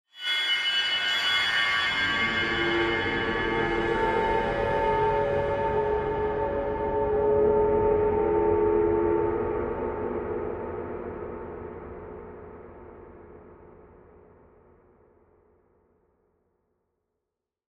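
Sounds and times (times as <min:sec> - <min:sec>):
horror swells metallic high eerie dark tones: 0:00.2 - 0:12.4.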